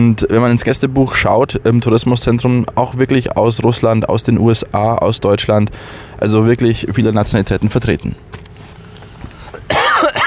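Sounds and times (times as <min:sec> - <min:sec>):
speech: 0:00.0 - 0:08.4
man coughing: 0:09.5 - 0:10.2.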